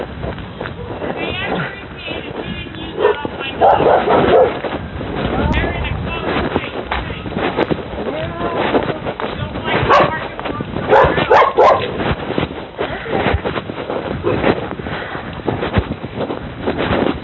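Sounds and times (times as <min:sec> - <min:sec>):
blustery wind buffeting the microphone outdoors: 0:00.0 - 0:17.2
dog barking outdoors: 0:03.0 - 0:04.6, 0:09.9 - 0:10.2, 0:10.9 - 0:12.0.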